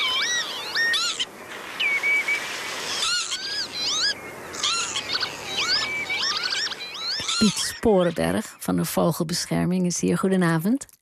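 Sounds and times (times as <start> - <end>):
lapwing song over spring meadowland: 0.0 - 8.6
speech: 7.4 - 11.0.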